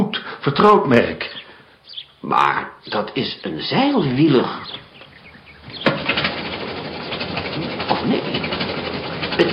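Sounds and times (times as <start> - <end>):
speech: 0.4 - 1.4, 2.2 - 4.8, 7.6 - 8.7, 9.4 - 9.5
old automobile engine sputtering roughly: 2.9 - 9.5
old automobile engine bang on starting: 4.6 - 9.5.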